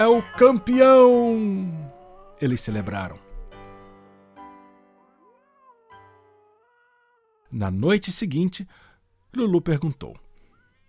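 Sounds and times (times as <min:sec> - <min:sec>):
speech: 0:00.0 - 0:01.8, 0:02.4 - 0:03.2, 0:07.5 - 0:10.2
cats meowing and yowling: 0:00.0 - 0:03.6, 0:04.9 - 0:07.5, 0:10.4 - 0:10.8.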